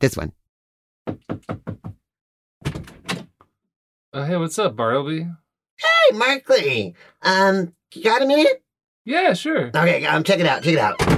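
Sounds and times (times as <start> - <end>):
speech: 0.0 - 0.4, 4.2 - 11.1
sharp wooden knocks: 1.1 - 2.0.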